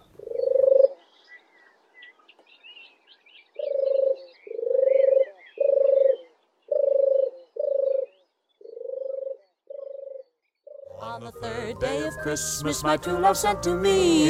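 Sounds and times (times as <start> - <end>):
turtle dove purring song: 0.0 - 1.0, 3.6 - 10.9
faint twittering of other birds: 0.0 - 11.0
speech: 11.2 - 14.2.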